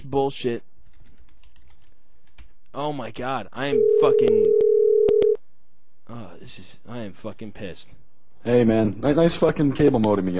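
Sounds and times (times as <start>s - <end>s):
speech: 0.1s - 0.7s, 2.8s - 4.6s, 6.1s - 10.3s
telephone dial tone while placing a call: 3.8s - 5.4s.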